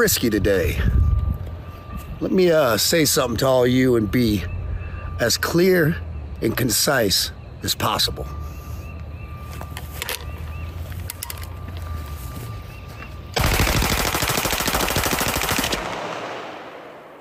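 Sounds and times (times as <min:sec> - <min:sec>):
speech: 0:00.0 - 0:01.0, 0:02.2 - 0:04.6, 0:05.2 - 0:08.4
quiet outdoor ambience: 0:00.0 - 0:17.1
semi-automatic rifle fire aimed at packs of beer: 0:13.4 - 0:17.1.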